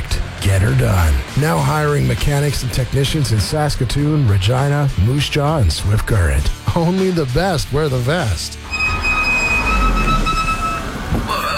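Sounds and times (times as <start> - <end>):
low rumble of road and engine noise: 0.0 - 11.5
speech: 0.5 - 8.8
car's worn brake pads squealing: 8.6 - 11.5.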